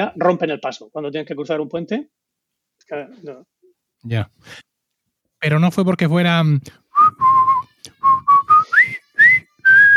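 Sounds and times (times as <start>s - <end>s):
speech: 0.0s - 2.2s, 2.8s - 4.7s, 5.4s - 6.8s
person whistling a jaunty military marching tune from a film: 6.9s - 9.9s.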